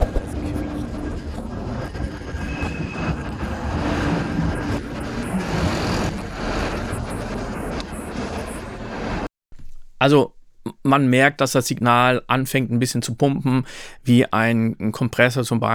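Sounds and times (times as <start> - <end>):
faint tram wheel squeal: 0.0 - 7.1
traffic noise: 0.0 - 9.3
tram rumbling past on a busy street: 0.0 - 9.3
speech: 10.0 - 15.7.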